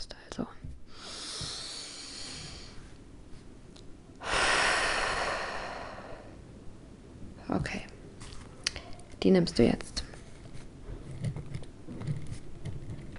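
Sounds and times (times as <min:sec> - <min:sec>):
long loud exhale: 0:00.9 - 0:03.0, 0:04.2 - 0:06.4
slow deep inhale: 0:00.9 - 0:03.0, 0:04.2 - 0:06.4
speech: 0:07.5 - 0:07.9, 0:09.2 - 0:09.9.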